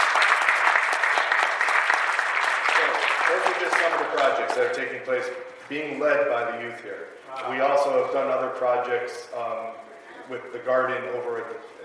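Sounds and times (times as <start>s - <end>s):
audience applause at a community gathering: 0.0s - 4.7s
speech: 3.5s - 11.8s.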